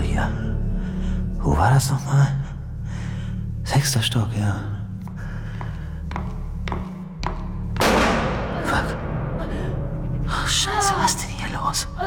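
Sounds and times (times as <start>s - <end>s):
steady low hum: 0.0s - 12.0s
speech: 1.6s - 2.5s, 3.7s - 4.8s
sharp gunshot cracks: 7.8s - 10.2s
loud blast with rumbling echo: 7.8s - 11.2s.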